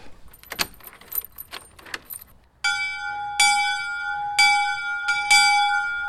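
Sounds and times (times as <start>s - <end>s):
light metallic clinking: 0.0s - 2.5s
new bell ringing in a bell tower: 2.1s - 6.0s.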